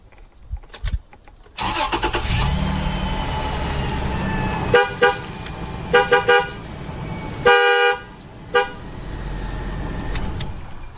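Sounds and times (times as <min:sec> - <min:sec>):
truck engine cranking, starting and idling: 0:01.6 - 0:10.9
truck horn honking: 0:04.5 - 0:06.7, 0:07.3 - 0:09.0.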